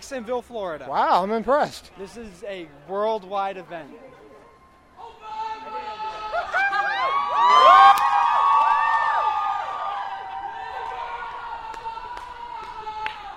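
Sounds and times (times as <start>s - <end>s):
speech: 0.1s - 4.1s
dense crowd partying in the streets cheering and shouting: 4.5s - 13.3s.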